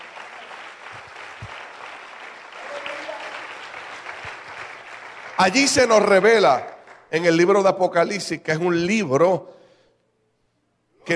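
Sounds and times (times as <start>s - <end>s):
audience applauding: 0.0s - 7.2s
speech: 5.4s - 9.6s.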